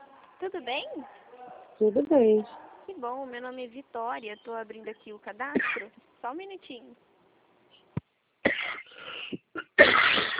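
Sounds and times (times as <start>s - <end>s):
speech: 0.4s - 7.1s
person coughing: 5.6s - 5.9s, 8.5s - 10.3s
wheezy breaths: 8.8s - 9.5s.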